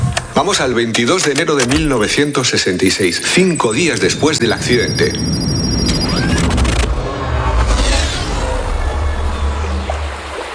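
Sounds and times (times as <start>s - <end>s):
speech: 0.4s - 5.5s
calm sea water washing off a beach: 3.2s - 10.5s
deep low rumble: 3.7s - 10.5s.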